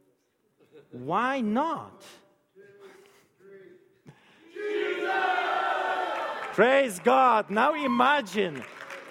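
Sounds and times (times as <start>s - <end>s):
speech: 0.7s - 2.2s, 6.6s - 8.8s
large congregation shouting in unison: 4.5s - 6.5s.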